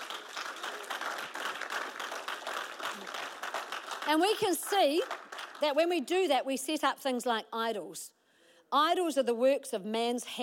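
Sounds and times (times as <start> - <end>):
group of people clapping together: 0.0 - 6.0
speech: 4.1 - 10.4.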